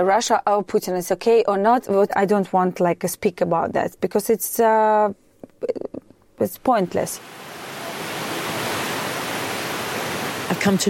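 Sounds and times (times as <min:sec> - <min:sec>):
speech: 0:00.0 - 0:05.8, 0:06.4 - 0:07.5, 0:10.5 - 0:10.8
wind-blown river water rushing: 0:07.1 - 0:10.8.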